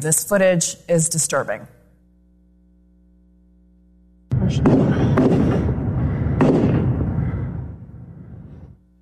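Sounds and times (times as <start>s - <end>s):
speech: 0.0s - 1.8s, 4.5s - 5.0s
continuous roaring wash of noise: 4.3s - 8.8s
gunshots from a large rifle at a public shooting scene: 4.4s - 7.9s.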